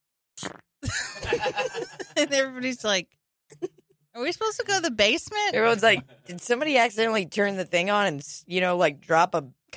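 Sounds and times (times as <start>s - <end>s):
voice imitating a weak fart with sputtering mouth noises: 0.4s - 0.7s
laughter: 1.0s - 2.4s
speech: 2.2s - 9.7s.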